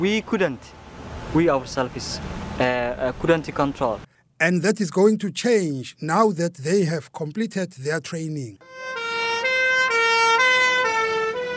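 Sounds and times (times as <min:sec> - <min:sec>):
speech: 0:00.0 - 0:08.7
fire engine siren rushing to a fire: 0:08.6 - 0:11.5.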